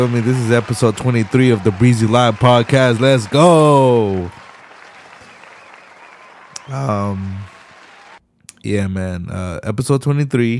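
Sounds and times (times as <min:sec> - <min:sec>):
speech: 0:00.0 - 0:04.4, 0:06.7 - 0:07.5, 0:08.6 - 0:10.5
steady dense clapping: 0:00.0 - 0:08.2.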